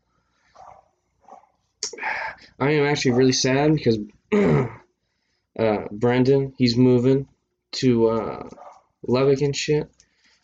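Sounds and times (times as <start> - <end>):
dog barking: 0.6 - 1.6, 3.0 - 3.4, 8.6 - 8.9
speech: 1.9 - 4.8, 5.6 - 10.0.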